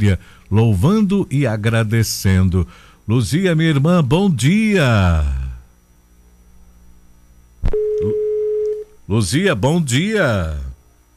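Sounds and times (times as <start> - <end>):
speech: 0.0 - 5.4, 9.1 - 10.7
low telephone line hum: 0.0 - 11.1
telephone line click: 7.6 - 8.9.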